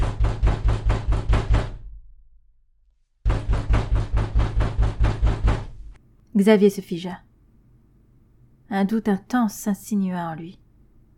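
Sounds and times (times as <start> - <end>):
firm knocks on a door: 0.0 - 2.0, 3.2 - 6.0
speech: 6.4 - 7.3, 8.7 - 10.6.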